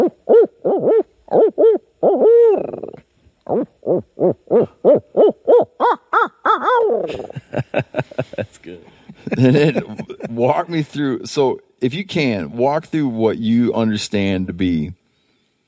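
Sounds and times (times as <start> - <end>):
person imitating owl hoots: 0.0 - 7.4
laughter: 7.1 - 10.6
speech: 9.4 - 9.8, 10.4 - 15.0.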